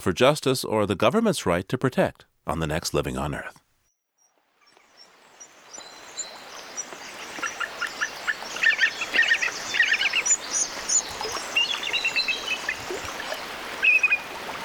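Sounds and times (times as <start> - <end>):
speech: 0.0 - 3.6
bald eagle fledgling chittering calls near Glacier Bay Alaska: 4.2 - 14.5.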